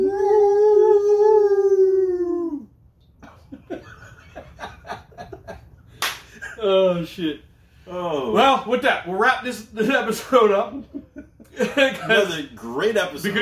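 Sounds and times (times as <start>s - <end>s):
person howling imitating a dog: 0.0s - 2.7s
people snickering and laughing: 3.2s - 6.9s, 10.2s - 12.5s
speech: 6.6s - 11.0s, 11.6s - 13.4s.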